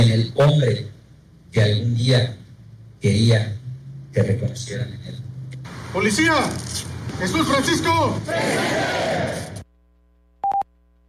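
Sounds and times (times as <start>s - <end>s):
speech: 0.2s - 2.4s, 3.0s - 3.6s, 4.2s - 5.2s, 5.9s - 9.6s
large crowd shouting in unison at a police officer's roll call ceremony: 7.5s - 9.6s
short electronic beeps: 10.4s - 10.7s.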